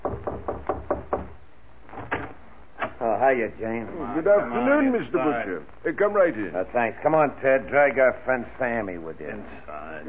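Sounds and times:
knuckles knocking on a door: 0.0 - 1.4
speech: 3.2 - 10.0.

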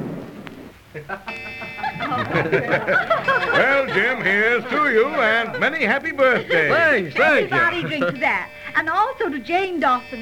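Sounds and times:
laughter: 1.0 - 8.9
speech: 1.0 - 10.1
clock chime striking: 1.3 - 10.1
murmuring voices: 1.3 - 10.1.

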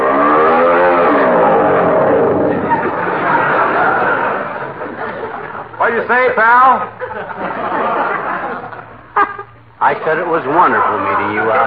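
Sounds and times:
motorboat engine roaring loudly and revving: 0.0 - 5.0
laughter: 2.3 - 5.9, 6.8 - 9.6, 10.6 - 11.6
speech: 6.1 - 7.4, 10.0 - 11.6.

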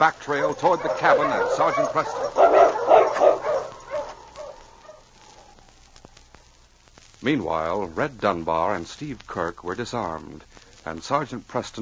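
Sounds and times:
speech: 0.0 - 3.3, 7.2 - 11.8
pack of sled dogs barking and yipping: 0.1 - 5.7.

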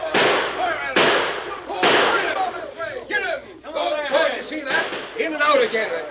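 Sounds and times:
gunshots in an old western chase scene: 0.0 - 2.5, 4.7 - 5.9
people shouting in an old western chase scene: 0.0 - 4.8.

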